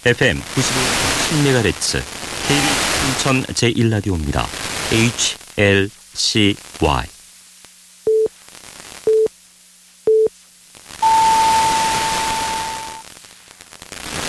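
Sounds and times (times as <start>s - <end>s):
speech: 0.0s - 7.2s
wash of static: 0.0s - 14.2s
longer higher-pitched radio time signal tone: 11.0s - 13.0s
radio hourly time signal beeps on a public radio station: 11.0s - 13.0s.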